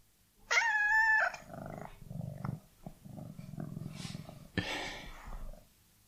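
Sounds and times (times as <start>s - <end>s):
cat meowing: 0.5s - 1.5s.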